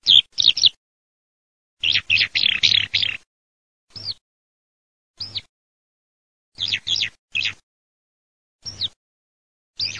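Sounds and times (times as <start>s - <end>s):
Eurasian skylark giving high rolling chirrups and liquid trills: 0.0s - 0.8s, 1.8s - 3.2s, 3.9s - 4.2s, 5.2s - 5.5s, 6.6s - 7.6s, 8.6s - 9.0s, 9.8s - 9.9s.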